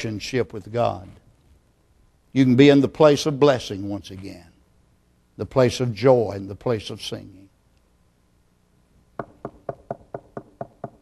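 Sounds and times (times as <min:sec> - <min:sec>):
speech: 0:00.0 - 0:01.2, 0:02.3 - 0:04.5, 0:05.4 - 0:07.5
knocking on a door: 0:09.2 - 0:11.0.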